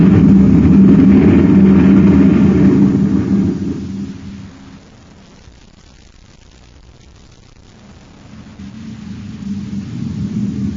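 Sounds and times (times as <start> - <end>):
engine rumble: 0.0 - 4.8, 7.8 - 10.7.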